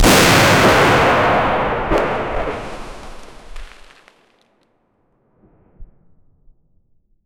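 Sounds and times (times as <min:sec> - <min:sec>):
real stun grenade explosion: 0:00.0 - 0:04.2.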